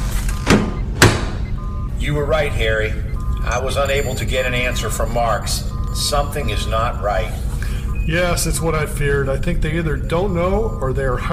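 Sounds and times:
time chamber door opening with mechanical clunks: 0:00.0 - 0:01.8
steady low machine hum: 0:00.0 - 0:11.3
speech: 0:02.0 - 0:07.4, 0:08.0 - 0:11.3.

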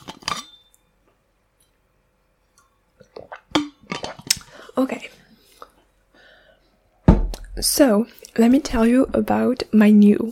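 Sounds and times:
glass clinking: 0:00.1 - 0:00.8
person gulping and sipping water: 0:02.9 - 0:04.6
speech: 0:04.8 - 0:05.2, 0:07.6 - 0:10.3.

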